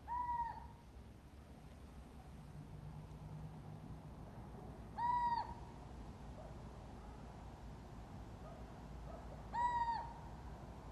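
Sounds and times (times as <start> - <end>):
Little owl calling, Athene noctua: 0.0 - 0.7, 5.0 - 5.6, 9.5 - 10.2.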